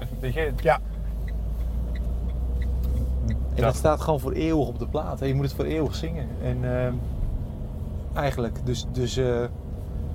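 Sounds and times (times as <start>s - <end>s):
deep road rumble inside a moving car: 0.0s - 10.1s
speech: 0.2s - 0.9s, 3.6s - 7.2s, 8.2s - 9.6s.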